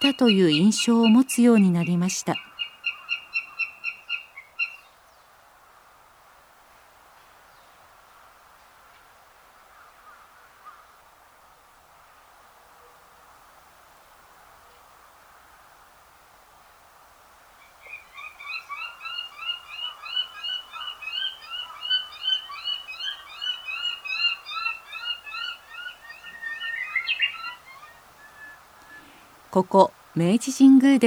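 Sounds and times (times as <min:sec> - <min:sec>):
juvenile northern goshawk calls at Meiji Jingu in Tokyo: 0:00.0 - 0:05.0, 0:17.6 - 0:30.1
speech: 0:00.1 - 0:02.5, 0:29.6 - 0:31.0.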